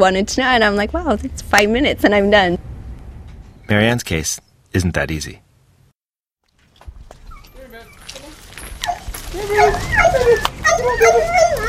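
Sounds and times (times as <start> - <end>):
speech: 0.0 - 2.7, 3.7 - 5.4, 9.4 - 11.6
two chained dogs whining and whimpering: 7.2 - 11.6
two chained dogs barking in a house yard: 8.8 - 11.6.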